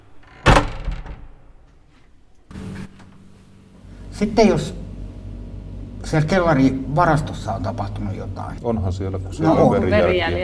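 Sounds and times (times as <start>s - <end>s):
front door of a home pushed shut: 0.0s - 1.6s
speech: 4.2s - 4.8s, 6.1s - 10.4s.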